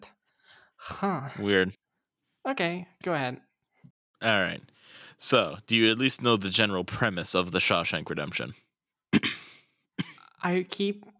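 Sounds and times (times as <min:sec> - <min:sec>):
speech: 0:00.9 - 0:01.8, 0:02.4 - 0:03.5, 0:04.2 - 0:08.6, 0:10.4 - 0:11.1
loud cough: 0:09.1 - 0:10.4.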